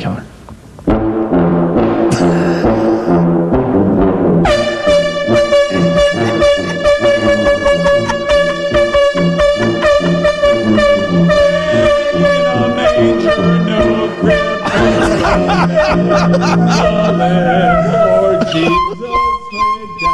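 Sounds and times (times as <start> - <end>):
thumping beat: 0.5 - 20.1
polka beat played on air horns: 0.9 - 20.1
laughter: 2.1 - 3.2, 5.7 - 20.1.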